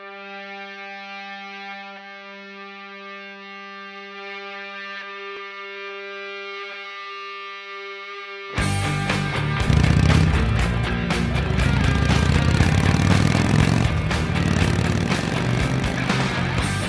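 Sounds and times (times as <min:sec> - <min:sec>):
motorcycle engine roaring at high speed along a highway at night: 0:08.8 - 0:16.8.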